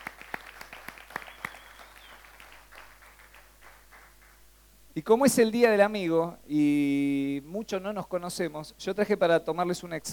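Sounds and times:
audience applause for first-time attendees at a gathering: 0.0s - 4.4s
speech: 5.0s - 10.1s.

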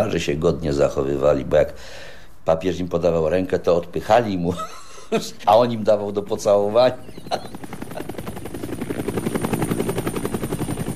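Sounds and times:
speech: 0.0s - 7.6s
papal helicopter taking off: 5.5s - 10.9s.

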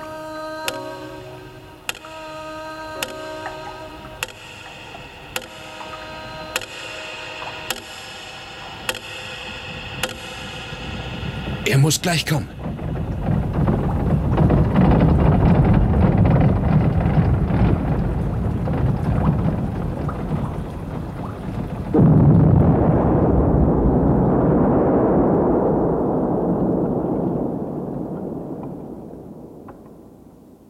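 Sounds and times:
thrown bomb explosion: 9.6s - 30.6s
speech: 11.7s - 12.6s.

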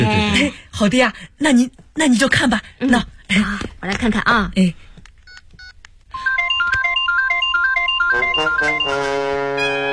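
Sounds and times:
speech: 0.4s - 4.9s, 8.4s - 9.9s
mobile phone ringtone sounding when its number is dialled: 6.2s - 9.9s.

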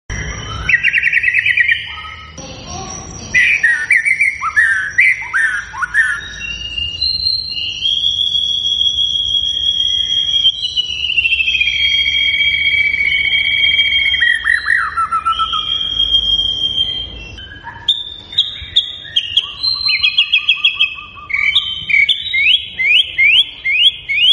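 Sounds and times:
White-rumped shama singing rich whistled phrases with fast trills: 0.1s - 24.3s.

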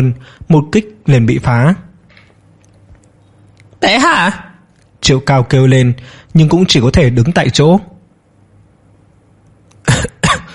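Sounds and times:
speech: 0.0s - 1.9s, 3.8s - 7.9s
harsh explosive coughs: 9.8s - 10.5s.

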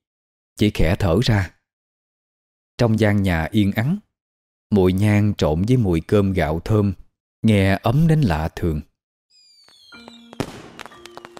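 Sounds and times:
speech: 0.6s - 1.6s, 2.8s - 4.0s, 4.7s - 8.9s
fireworks popping and booming in a neighbourhood on the night of Tet: 9.5s - 11.3s.

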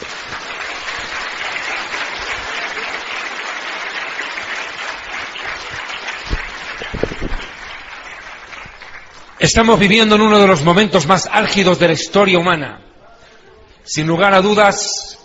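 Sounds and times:
congregation applauding at a religious sermon: 0.0s - 9.7s
speech: 9.4s - 12.9s, 13.9s - 15.0s.

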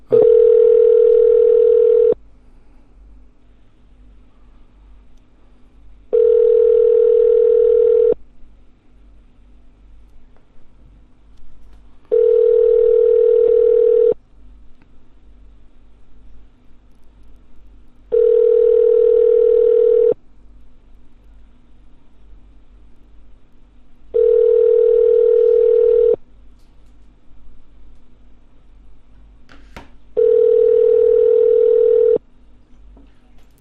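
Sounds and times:
faint low hum: 0.0s - 33.5s
telephone ringback tone after dialing a number: 0.1s - 2.2s, 6.1s - 8.2s, 12.1s - 14.2s, 18.1s - 20.2s, 24.2s - 26.2s, 30.2s - 32.2s.

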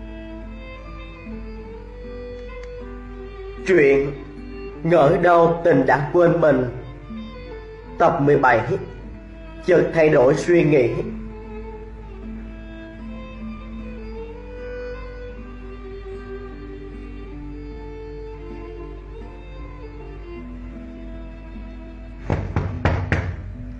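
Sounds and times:
steady tonal background: 0.0s - 19.4s
speech: 3.6s - 6.8s, 8.0s - 8.9s, 9.6s - 11.2s
light knocks on an office door: 22.2s - 23.6s.

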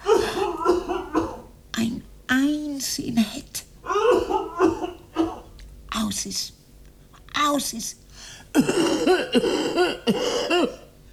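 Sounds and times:
person coughing in a stage play: 0.0s - 1.5s, 3.9s - 5.6s, 8.5s - 11.0s
speech: 2.8s - 3.7s, 6.2s - 6.6s, 7.4s - 10.8s.

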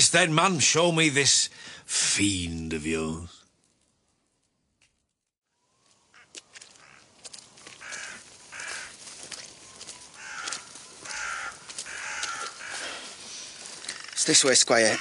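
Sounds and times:
speech: 0.1s - 3.4s, 14.3s - 15.0s
birds cawing over a ploughed field: 6.0s - 15.0s.

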